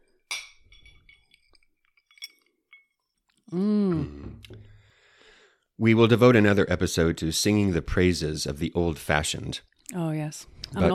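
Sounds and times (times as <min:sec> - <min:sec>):
cocktail glasses clinking in a toast: 0:00.2 - 0:03.3
speech: 0:03.5 - 0:03.8, 0:05.8 - 0:10.9
drawn-out pleased vocal sound from a person: 0:03.5 - 0:04.6.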